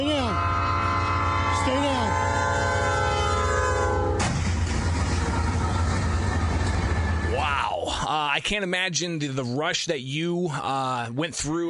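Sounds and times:
train horn blaring: 0.0s - 4.5s
heavy continuous grinding roar of train colliding with a truck: 0.4s - 7.3s
train colliding with a truck: 4.0s - 7.3s
speech: 8.4s - 11.6s.

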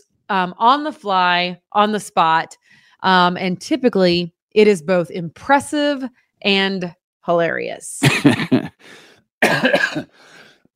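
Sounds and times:
speech: 0.0s - 10.4s
coughing: 8.0s - 8.8s, 9.4s - 10.3s.

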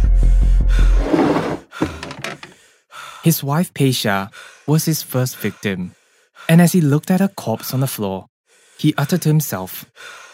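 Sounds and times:
man panting heavily from physical effort: 0.7s - 3.2s, 4.3s - 6.7s, 8.5s - 8.9s, 9.9s - 10.3s
speech: 3.2s - 10.2s.

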